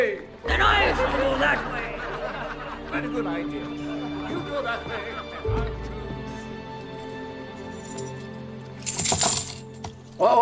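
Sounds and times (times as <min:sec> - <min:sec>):
laughter: 0:00.5 - 0:06.2
speech: 0:03.0 - 0:06.0, 0:10.2 - 0:10.4
coins dropping and scattering: 0:07.8 - 0:10.1.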